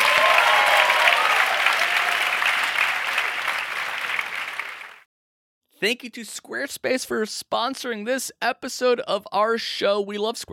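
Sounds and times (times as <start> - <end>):
audience applause: 0.0 - 5.1
speech: 5.8 - 10.5.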